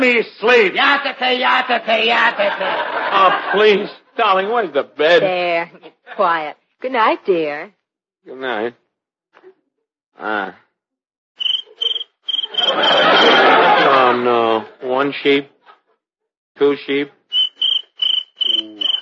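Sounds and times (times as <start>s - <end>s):
speech: 0.0s - 8.8s, 10.2s - 10.6s, 12.6s - 15.5s, 16.6s - 17.2s
laughter: 0.9s - 6.4s, 12.5s - 14.8s
cricket chirping: 11.4s - 13.4s, 17.3s - 19.0s
loud noise: 12.6s - 14.0s.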